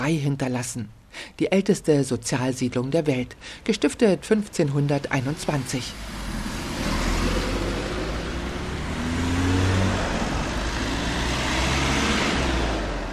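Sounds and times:
speech: 0:00.0 - 0:06.2
road traffic rumbling outside a gateway: 0:03.3 - 0:13.1.

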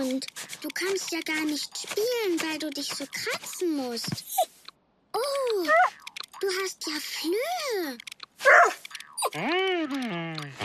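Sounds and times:
speech: 0:00.2 - 0:04.5, 0:05.1 - 0:10.6
dog with fleas barking: 0:08.4 - 0:08.9
dog with fleas whining: 0:08.4 - 0:10.6.

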